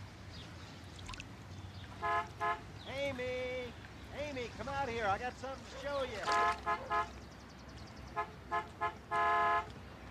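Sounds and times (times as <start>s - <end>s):
car horn honking: 2.0s - 2.7s, 6.2s - 7.1s, 8.1s - 9.7s
speech: 4.4s - 7.2s.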